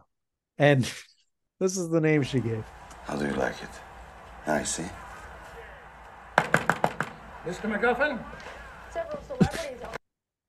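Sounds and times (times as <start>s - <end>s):
speech: 0.6s - 5.0s, 7.4s - 10.0s
knocking on a wooden door: 6.4s - 7.2s
laughter: 8.6s - 10.0s.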